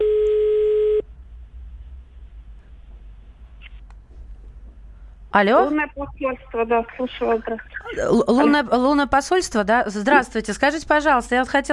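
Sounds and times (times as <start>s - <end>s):
steady mid-pitched telephone call tone: 0.0s - 1.0s
speech: 5.3s - 11.7s.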